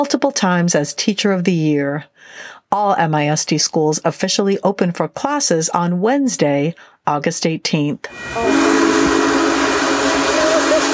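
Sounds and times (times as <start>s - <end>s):
speech: 0.0s - 8.7s
1941 Union Pacific steam locomotive rumbling through a city: 8.1s - 10.9s
faint whistle-like tones of steam locomotive: 8.1s - 10.9s.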